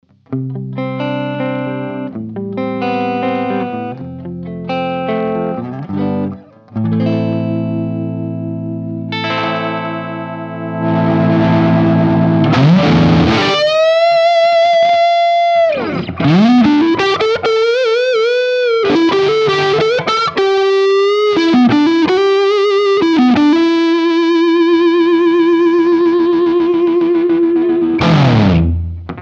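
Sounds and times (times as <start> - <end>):
Gibson Les Paul LPM electric guitar on neck pickup, clean to gain: 0.0 - 29.2.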